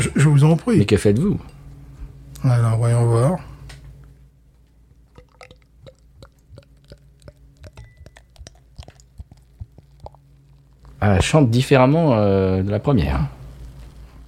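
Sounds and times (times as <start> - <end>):
speech: 0.0 - 1.6, 2.4 - 3.5, 11.0 - 13.4
low steady hum: 0.0 - 14.2
carbonated drink being poured and foaming: 5.1 - 10.2.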